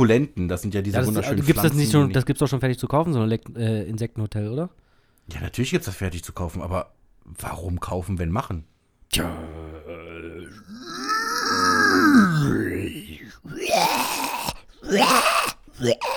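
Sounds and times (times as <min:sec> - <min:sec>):
speech: 0:00.0 - 0:09.7, 0:12.2 - 0:12.7, 0:14.9 - 0:16.1
voice imitating zombie groans and growls: 0:09.2 - 0:16.1.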